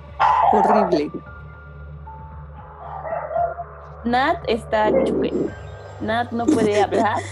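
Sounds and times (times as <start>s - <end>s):
dog barking: 0.2s - 1.1s, 2.7s - 3.8s
speech: 0.5s - 1.3s, 4.0s - 7.3s
laughter: 0.6s - 1.2s, 6.4s - 7.3s.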